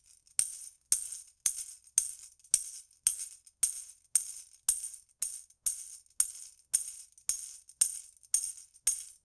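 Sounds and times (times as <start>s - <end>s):
toy tambourine: 0.0s - 9.3s.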